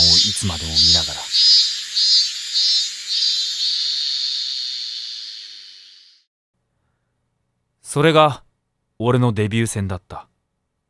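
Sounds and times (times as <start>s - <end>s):
cicadas droning with a shrill buzz: 0.0s - 6.3s
speech: 0.3s - 1.3s, 7.9s - 8.4s, 9.0s - 10.3s.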